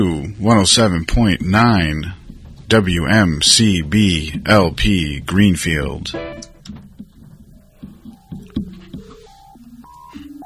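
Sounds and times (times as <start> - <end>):
speech: 0.0 - 6.5
busy clattering background: 1.1 - 10.4
telephone keypad dialing tones: 8.2 - 10.4.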